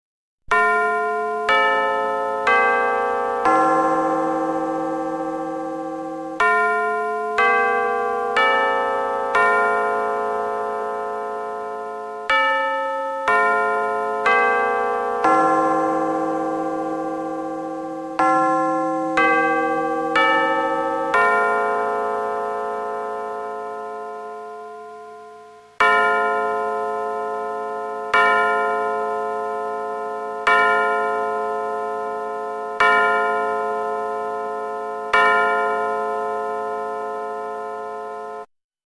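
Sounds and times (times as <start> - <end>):
clock chime strike: 0.5 - 38.5.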